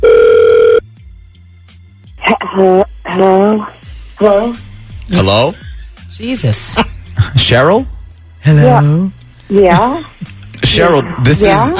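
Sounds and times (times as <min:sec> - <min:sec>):
buzzing telephone tone as a call is placed: 0:00.0 - 0:00.8
speech: 0:02.5 - 0:05.6, 0:06.2 - 0:11.7.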